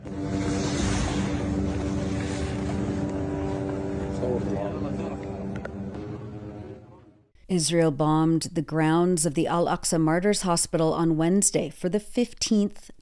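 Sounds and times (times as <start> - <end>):
drones buzzing overhead above the Al-Aqsa Martyrs Hospital grounds in Gaza: 0.0 - 7.2
speech: 4.3 - 5.2, 7.5 - 12.9.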